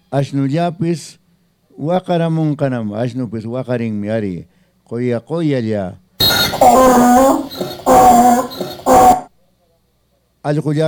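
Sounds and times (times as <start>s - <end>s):
speech: 0.1s - 1.2s, 1.8s - 9.0s, 10.4s - 10.8s
dogs whimpering and howling: 6.2s - 9.2s.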